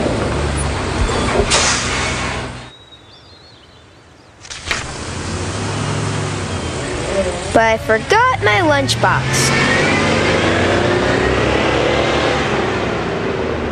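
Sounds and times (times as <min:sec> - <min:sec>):
large school bus engine rumbling: 0:00.0 - 0:03.3, 0:04.4 - 0:13.7
school bus air brakes hissing: 0:01.5 - 0:02.4
speech: 0:07.6 - 0:09.9.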